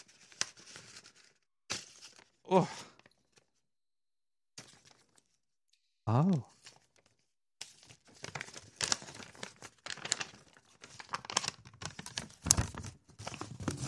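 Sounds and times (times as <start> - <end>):
paper envelope being crumpled and torn: 0.0 - 3.6, 4.6 - 5.4, 6.5 - 13.8
speech: 2.5 - 2.8, 6.1 - 6.5.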